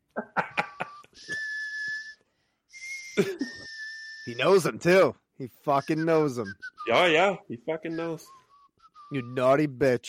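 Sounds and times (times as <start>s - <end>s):
laughter: 0.1s - 1.4s
person whistling in a western-style film scene: 0.6s - 4.7s, 5.6s - 7.3s, 7.9s - 9.6s
speech: 3.2s - 3.6s, 4.2s - 8.4s, 9.1s - 10.0s.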